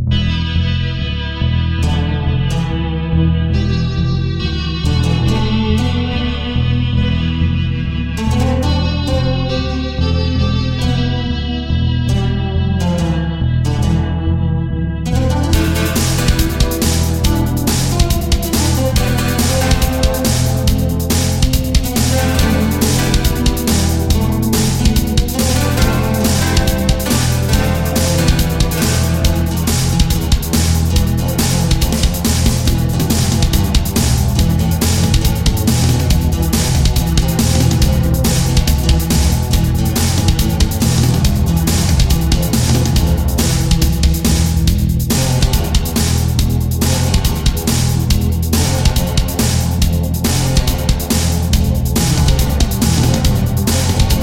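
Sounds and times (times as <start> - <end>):
guitar strumming: 0.1 - 54.2.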